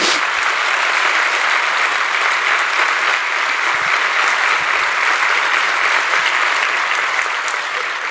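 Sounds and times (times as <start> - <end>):
dense audience applause at a youth event: 0.0 - 8.0.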